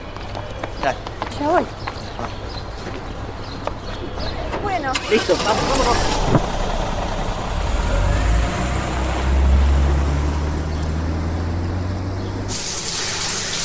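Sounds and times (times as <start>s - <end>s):
speech: 0.8s - 2.4s, 4.7s - 6.4s
low engine-like rumble: 4.9s - 12.6s
shower at home running: 12.5s - 13.6s.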